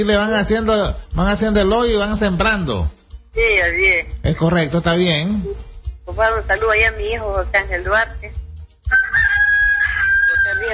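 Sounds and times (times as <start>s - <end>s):
speech: 0.0s - 9.2s, 10.6s - 10.7s
rooster crowing: 8.9s - 10.7s.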